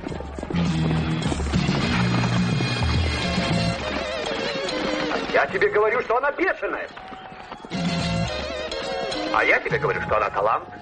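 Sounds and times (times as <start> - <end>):
galloping horse hooves: 0.0 - 10.8
speech: 5.4 - 7.2, 9.3 - 10.8.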